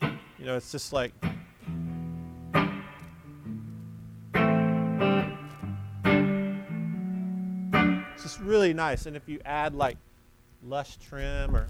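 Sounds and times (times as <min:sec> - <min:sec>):
speech: 0:00.4 - 0:01.8, 0:08.4 - 0:11.6
electric guitar chords through a guitar amp's spring reverb: 0:01.2 - 0:08.8.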